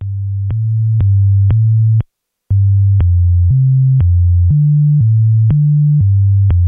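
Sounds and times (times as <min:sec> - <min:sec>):
computer-generated pentatonic music of sine-like electronic tones: 0:00.0 - 0:06.6.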